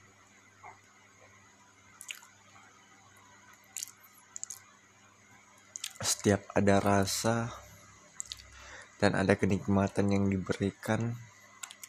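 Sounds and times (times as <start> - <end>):
quiet low hum: 0.0 - 11.8
chewing of food: 2.0 - 2.3, 3.7 - 4.6, 5.7 - 6.0, 8.2 - 8.5
speech: 6.1 - 7.6, 9.0 - 11.3.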